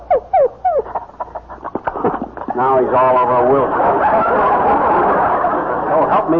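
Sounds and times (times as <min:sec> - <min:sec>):
dog whimpering and yipping: 0:00.0 - 0:01.5
laughter: 0:00.8 - 0:06.3
speech: 0:02.6 - 0:06.3.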